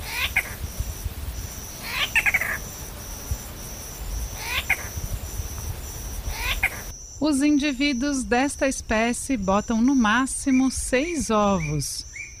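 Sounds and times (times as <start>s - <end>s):
bird giving short, whiny, cat-like mewing calls: 0.0s - 6.9s
steady high insect drone: 0.0s - 12.3s
speech: 7.2s - 12.3s.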